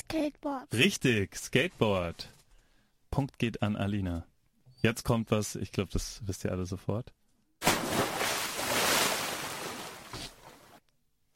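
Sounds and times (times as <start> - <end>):
speech: 0.1 - 2.4, 3.2 - 7.8
person leaping into water with a loud splash: 7.6 - 10.8
smaller splash: 7.6 - 10.8.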